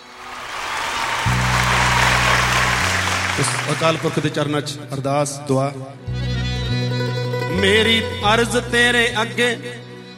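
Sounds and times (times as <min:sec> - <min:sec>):
loud audience applause at a gathering: 0:00.0 - 0:04.6
speech: 0:03.4 - 0:06.9, 0:07.6 - 0:09.8.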